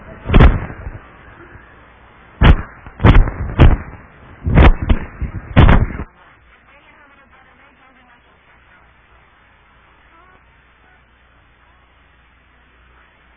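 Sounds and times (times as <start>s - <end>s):
fireworks exploding outside: 2.4s - 6.1s.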